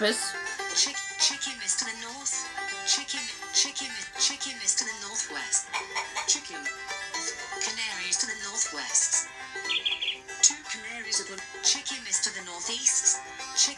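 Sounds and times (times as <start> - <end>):
speech: 0.0 - 13.7
canary chirping and trilling: 9.7 - 10.3.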